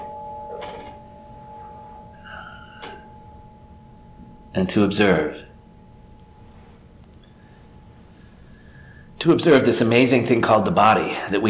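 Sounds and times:
bell struck as a call to stop and observe: 0.0s - 6.5s
speech: 4.6s - 5.5s, 9.2s - 11.4s.

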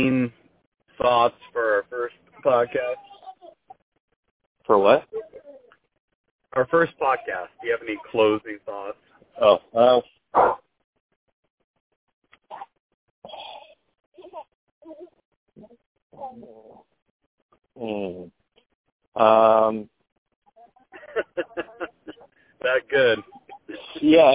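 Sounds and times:
speech: 0.0s - 0.4s, 1.0s - 3.0s, 4.7s - 5.2s, 6.6s - 10.6s, 17.8s - 18.4s, 19.2s - 19.9s, 21.2s - 24.3s
dog barking: 10.4s - 10.6s
laughter: 20.9s - 24.1s.

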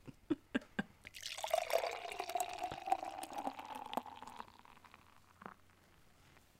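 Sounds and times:
beer spilling and splashing onto a person's pants: 1.1s - 5.7s.

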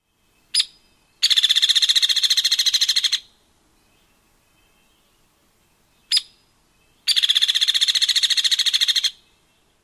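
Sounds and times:
downy and hairy woodpecker rattle calls: 0.5s - 3.3s, 6.0s - 6.4s, 7.0s - 9.2s.

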